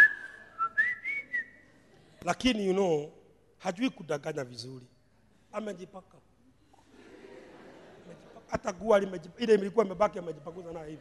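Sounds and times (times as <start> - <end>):
person whistling a tune: 0.0 - 1.6
laughter: 1.6 - 2.5, 6.7 - 9.2
speech: 2.2 - 6.3, 8.1 - 10.9.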